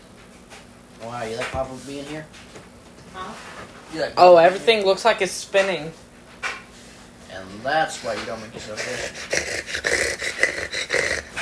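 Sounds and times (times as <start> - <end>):
speech: 1.0 - 6.0, 7.4 - 10.0
heavy dog-like panting breaths: 8.5 - 11.3.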